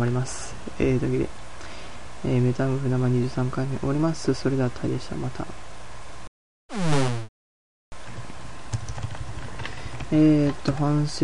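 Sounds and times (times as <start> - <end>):
speech: 0.0 - 1.4, 2.2 - 5.7, 10.1 - 11.2
swooping electronic tone: 6.7 - 7.3
typing on a computer keyboard: 8.7 - 10.8.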